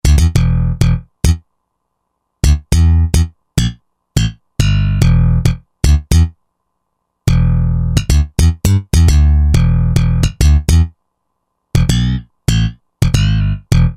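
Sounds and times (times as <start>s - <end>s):
slap bass on a Roland JV-2080: 0.0s - 1.4s, 2.4s - 6.3s, 7.3s - 10.9s, 11.8s - 13.9s.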